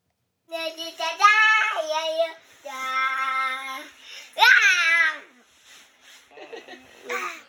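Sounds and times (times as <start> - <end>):
young child singing an animated children's TV series theme song: 0.5 - 5.4.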